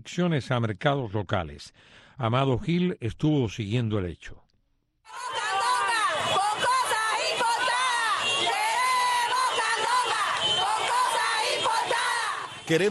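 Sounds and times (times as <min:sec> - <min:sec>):
speech: 0:00.0 - 0:04.4, 0:12.7 - 0:12.8
protest crowd shouting and chanting: 0:05.1 - 0:12.8.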